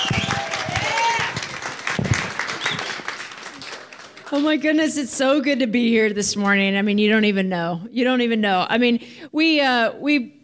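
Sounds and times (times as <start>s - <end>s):
whistle-like tone: 0.0s - 0.6s, 2.6s - 3.0s
audience applauding an arriving speaker: 0.0s - 4.9s
speech: 4.3s - 10.4s.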